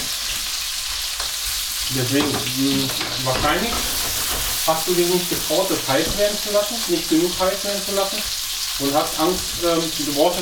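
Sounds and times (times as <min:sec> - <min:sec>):
fried potatoes sizzling in a hot pan: 0:00.0 - 0:10.3
speech: 0:01.9 - 0:10.3
stirring scrape in a pan: 0:02.9 - 0:06.2.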